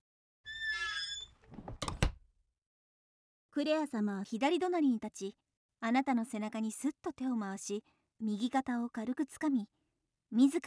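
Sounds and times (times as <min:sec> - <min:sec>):
door creaking open with a high squeal: 0:00.5 - 0:02.2
door shutting with solid thuds and knocks: 0:01.5 - 0:02.2
speech: 0:03.6 - 0:10.6.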